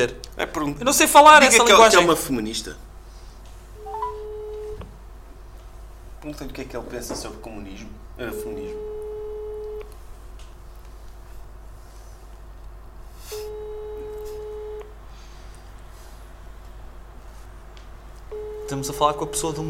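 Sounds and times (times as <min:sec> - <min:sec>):
speech: 0:00.0 - 0:02.9, 0:06.2 - 0:08.9, 0:18.7 - 0:19.6
electronic mobile phone tone over a call: 0:03.8 - 0:04.8, 0:13.4 - 0:14.9, 0:18.3 - 0:19.6.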